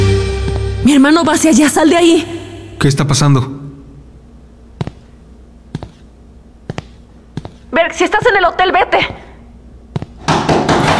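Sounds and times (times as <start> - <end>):
speech: 0.9 - 3.6, 7.9 - 9.2
pounding on a door: 10.2 - 10.9.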